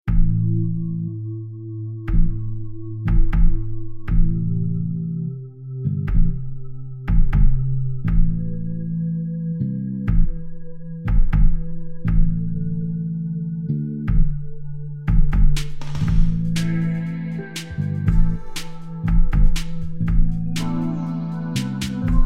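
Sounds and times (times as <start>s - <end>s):
blues groove music: 0.1s - 22.2s.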